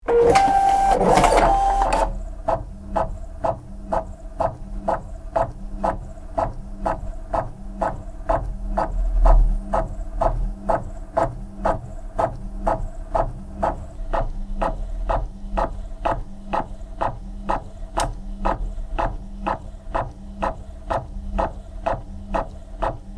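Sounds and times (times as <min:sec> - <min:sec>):
printer printing: 0:00.0 - 0:23.1.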